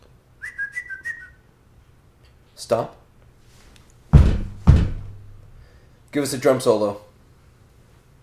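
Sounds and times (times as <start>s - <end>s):
person whistling a short sustained wavering tone: 0.4s - 1.5s
speech: 2.6s - 3.0s, 6.2s - 7.1s.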